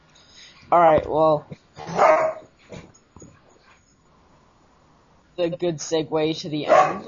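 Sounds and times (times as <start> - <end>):
speech: 0.7 - 2.3, 5.4 - 7.0
dogs barking and scuffling: 1.5 - 4.0, 6.6 - 7.0.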